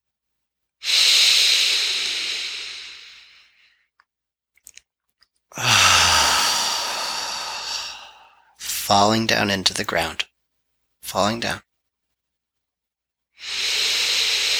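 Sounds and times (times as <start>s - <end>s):
audible exhales during a breathing exercise: 0.8s - 3.6s, 5.6s - 8.6s, 13.4s - 14.5s
speech: 8.9s - 10.2s, 11.1s - 11.7s.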